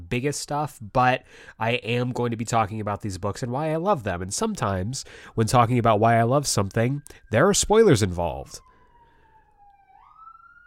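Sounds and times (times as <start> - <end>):
speech: 0.1 - 8.7
police siren wailing: 5.9 - 10.6.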